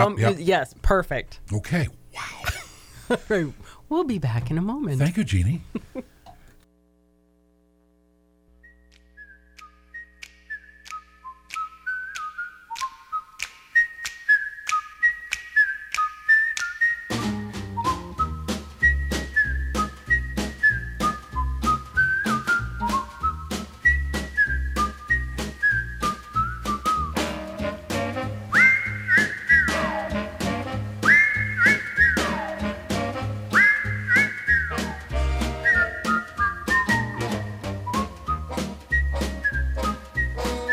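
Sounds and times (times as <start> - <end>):
speech: 0.0 - 6.1
laughter: 2.2 - 3.6, 5.0 - 6.3
person whistling a bright stepping melody: 8.6 - 27.4, 28.2 - 40.7.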